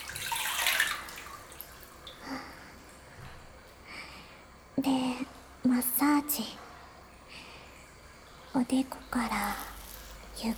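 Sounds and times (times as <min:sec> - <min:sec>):
hot water scooped by hand splashing and sloshing: 0:00.0 - 0:03.8, 0:08.3 - 0:10.5
speech: 0:04.8 - 0:06.6, 0:08.6 - 0:09.7, 0:10.4 - 0:10.5.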